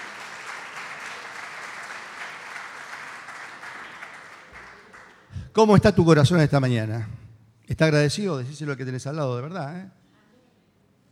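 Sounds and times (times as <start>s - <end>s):
audience applause: 0.0s - 5.6s
speech: 5.6s - 10.0s.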